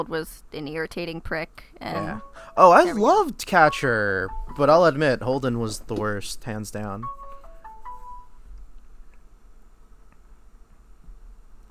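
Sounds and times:
speech: 0.0 - 7.2
low steady hum: 0.0 - 11.6
electronic phone ringtone for incoming call: 2.0 - 5.3, 7.0 - 8.4.

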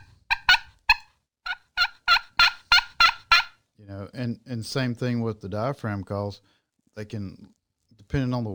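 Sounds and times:
turkey clucks: 0.0 - 3.5
speech: 3.9 - 8.5.

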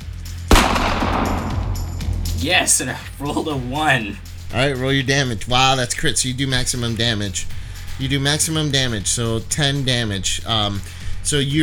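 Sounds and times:
firearm gunshot: 0.5 - 2.4
low hum: 0.6 - 2.4
speech: 2.4 - 11.6.

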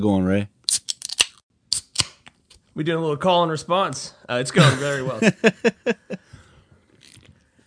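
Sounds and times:
speech: 0.0 - 0.6, 2.8 - 6.3
Coors Light beer can being cracked open: 0.7 - 2.4
laughter: 4.5 - 6.3.

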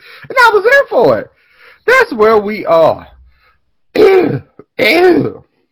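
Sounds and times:
speech: 0.3 - 3.1, 3.9 - 5.5
person imitating a cough: 4.0 - 4.6.

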